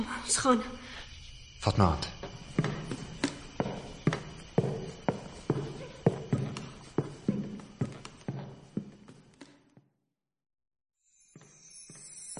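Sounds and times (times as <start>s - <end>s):
speech: 0.0s - 0.8s, 1.6s - 2.2s
footsteps climbing stairs in the dark: 2.2s - 9.8s.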